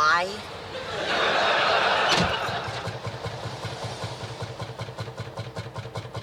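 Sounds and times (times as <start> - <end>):
car engine cranking: 0.5 - 6.2
laughter: 0.7 - 3.4
car engine running badly in a rough uneven idle: 1.6 - 6.2.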